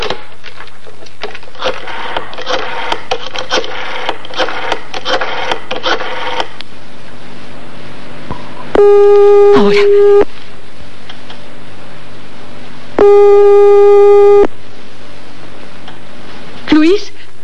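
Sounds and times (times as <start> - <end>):
telephone busy signal: 8.8 - 10.3, 13.0 - 14.5
speech: 16.6 - 17.3.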